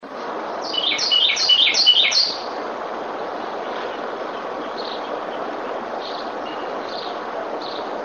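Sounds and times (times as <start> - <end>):
steady background hiss: 0.0 - 8.0
bird chirps: 0.6 - 2.6, 3.7 - 8.0.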